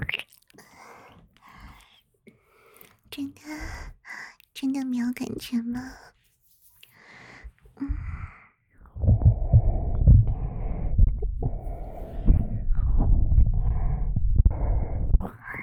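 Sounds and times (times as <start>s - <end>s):
speech: 4.6s - 6.1s
fast heartbeat thumping heard through a chest: 8.9s - 15.4s.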